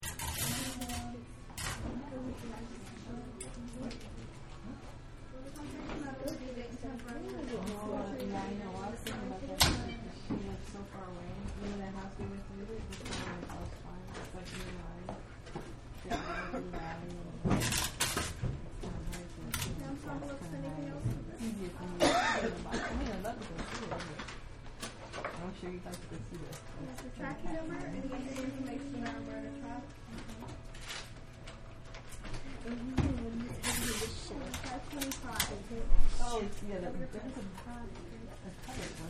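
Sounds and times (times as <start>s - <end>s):
post office ambience: 0.1s - 39.0s
cough: 16.1s - 16.7s, 22.0s - 23.1s.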